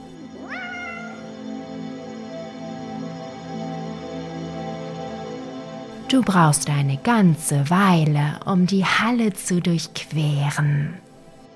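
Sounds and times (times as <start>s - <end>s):
cat meowing: 0.4s - 1.3s
speech: 6.1s - 11.1s.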